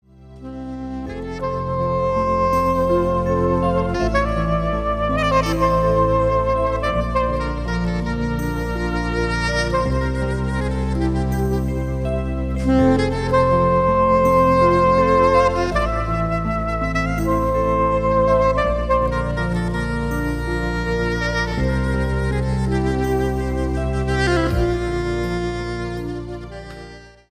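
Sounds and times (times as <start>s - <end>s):
saxophone: 0.1s - 27.2s.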